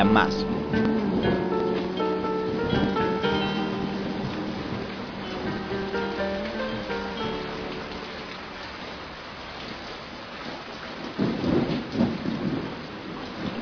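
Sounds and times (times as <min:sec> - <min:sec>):
speech: 0:00.0 - 0:01.4
deep thunder rumble: 0:00.0 - 0:06.4, 0:11.1 - 0:13.6
soft musical tones: 0:00.0 - 0:09.4
heavy rain: 0:00.0 - 0:13.6.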